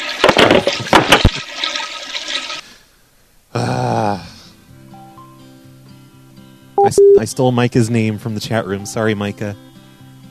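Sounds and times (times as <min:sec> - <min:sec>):
toilet flushing: 0:00.0 - 0:02.7
speech: 0:00.6 - 0:01.0, 0:06.9 - 0:09.7.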